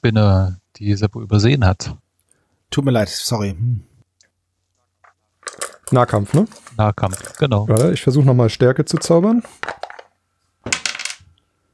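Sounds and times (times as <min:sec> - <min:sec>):
speech: 0:00.0 - 0:02.0, 0:02.7 - 0:03.9, 0:05.9 - 0:09.8
dice rolled on a hard table during a fantasy role-playing game: 0:05.0 - 0:11.4.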